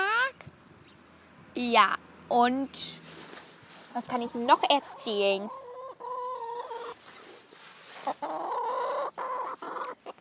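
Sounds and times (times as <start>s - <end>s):
speech: 1.6s - 3.1s, 4.0s - 5.6s, 8.1s - 8.6s
hen clucking: 4.0s - 10.1s.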